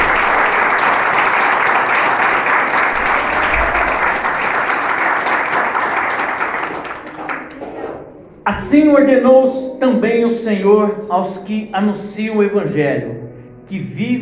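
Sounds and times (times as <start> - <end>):
large crowd clapping: 0.0 - 8.0
speech: 8.7 - 14.2.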